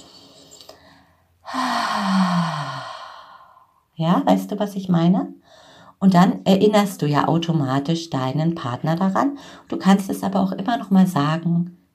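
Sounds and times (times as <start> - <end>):
loud breathy exhale through an open mouth: 1.5 - 3.7
speech: 4.0 - 11.8.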